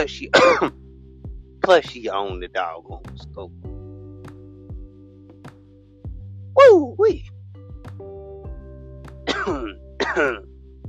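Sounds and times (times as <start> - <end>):
speech: 0.0 - 0.8, 1.6 - 3.7, 6.6 - 7.3, 10.2 - 10.5
person coughing: 0.3 - 0.8, 9.3 - 10.5.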